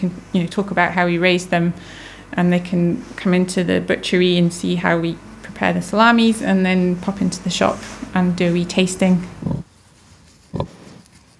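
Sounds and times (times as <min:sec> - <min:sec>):
speech: 0:00.0 - 0:09.6, 0:10.6 - 0:10.8
low hum: 0:00.0 - 0:11.1
pregnant sow grunting on a farm: 0:07.6 - 0:09.7, 0:10.5 - 0:11.0.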